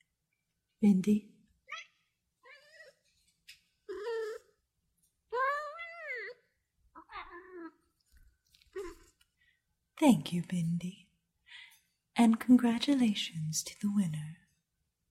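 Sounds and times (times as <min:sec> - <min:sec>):
speech: 0:00.8 - 0:01.3, 0:10.0 - 0:11.0, 0:12.2 - 0:14.4
domestic cat meowing: 0:01.7 - 0:03.0, 0:05.3 - 0:06.4, 0:07.0 - 0:07.8.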